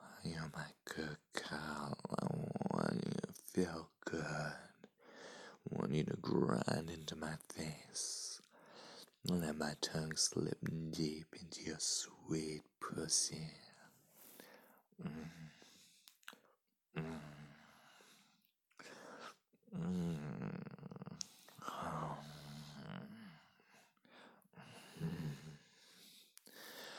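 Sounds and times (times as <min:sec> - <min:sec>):
speech: 0:00.2 - 0:04.4, 0:05.9 - 0:08.2, 0:09.2 - 0:13.7, 0:15.0 - 0:15.6
man breathing heavily: 0:05.0 - 0:05.6, 0:08.5 - 0:09.2, 0:13.9 - 0:20.3, 0:21.2 - 0:26.9
man growling low in rough breathy bursts: 0:17.0 - 0:17.4, 0:19.8 - 0:23.2.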